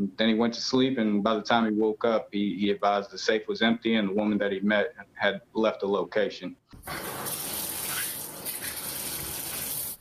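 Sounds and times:
speech: 0.0s - 7.4s
shower running in a hotel room bathroom: 6.8s - 9.9s.

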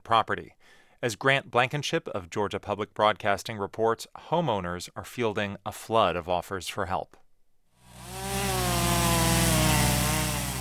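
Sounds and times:
speech: 0.1s - 7.2s
chainsaw at full throttle cutting storm-felled trees: 7.8s - 10.5s.

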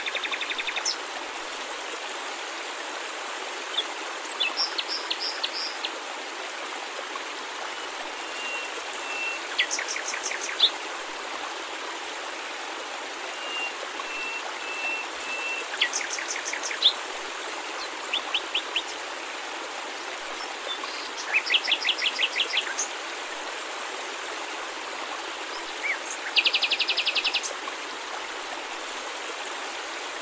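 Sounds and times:
falling water rushing: 0.0s - 30.2s.

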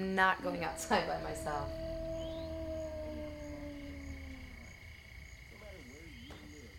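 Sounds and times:
speech: 0.0s - 1.9s
wolf howling: 0.0s - 5.2s
steady low hum: 0.0s - 6.2s.

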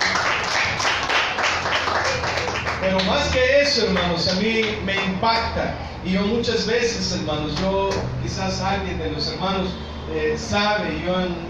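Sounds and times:
audience applauding: 0.0s - 5.2s
speech: 2.9s - 11.4s.

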